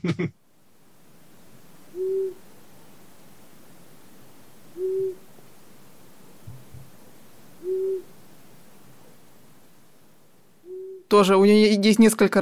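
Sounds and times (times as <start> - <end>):
speech: 0.0 - 0.4, 11.1 - 12.4
faint hiss: 0.0 - 12.4
long-eared owl hooting: 1.9 - 2.4, 4.7 - 5.3, 6.5 - 8.2, 10.6 - 11.1.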